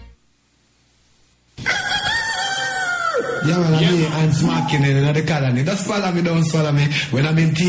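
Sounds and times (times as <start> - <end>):
rooster crowing: 1.6 - 5.1
speech: 3.5 - 7.6.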